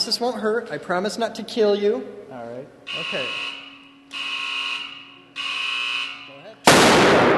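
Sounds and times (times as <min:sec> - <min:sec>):
speech: 0:00.1 - 0:04.2
electronic buzzer tones: 0:02.9 - 0:06.4
high-voltage discharge bang vaporizing an aluminum can: 0:06.7 - 0:07.3.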